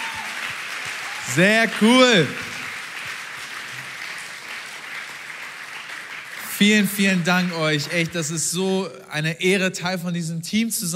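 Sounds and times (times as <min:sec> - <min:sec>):
large audience applauding: 0:00.0 - 0:08.4
speech: 0:01.3 - 0:02.5, 0:06.6 - 0:10.9.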